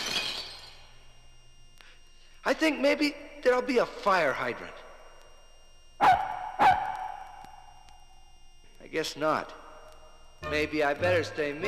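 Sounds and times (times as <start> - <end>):
pane of window glass shattering: 0.0 - 0.7
window glass shards tinkling: 0.0 - 0.8
speech: 2.5 - 4.8, 8.9 - 9.6, 10.4 - 11.6.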